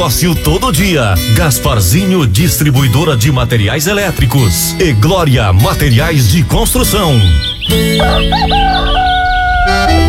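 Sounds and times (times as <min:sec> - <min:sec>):
speech: 0:00.0 - 0:10.0
rooster crowing: 0:07.9 - 0:10.0.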